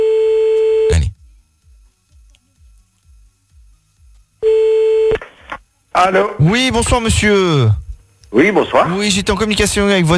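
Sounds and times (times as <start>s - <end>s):
telephone ringing tone when calling back: 0.0s - 1.0s, 4.4s - 5.2s
speech: 6.0s - 10.1s.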